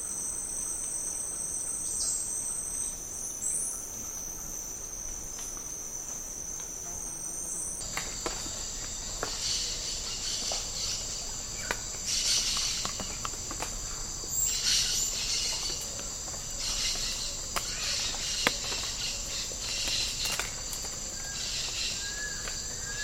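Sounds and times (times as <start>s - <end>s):
tropical rainforest habitat insects: 0.0s - 23.0s.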